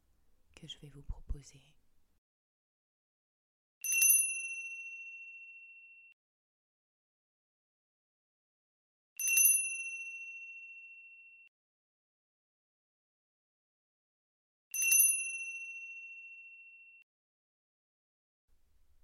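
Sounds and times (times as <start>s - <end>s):
speech: 0.6s - 1.8s
handbell ringing: 3.8s - 6.1s, 9.2s - 11.4s, 14.8s - 17.0s.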